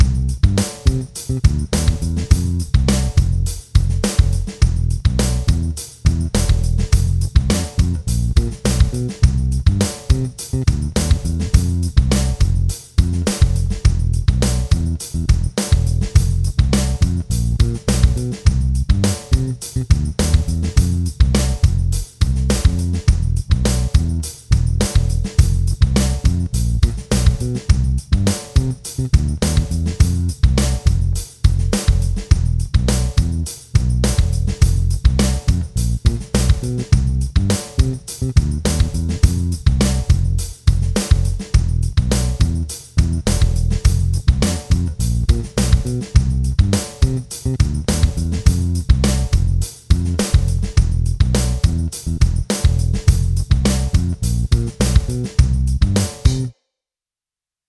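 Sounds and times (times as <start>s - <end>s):
bass drum beat: 0.0s - 56.5s.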